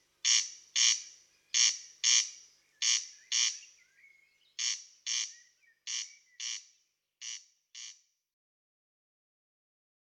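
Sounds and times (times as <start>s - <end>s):
corn crake rasping call: 0.0s - 3.7s, 4.6s - 8.0s.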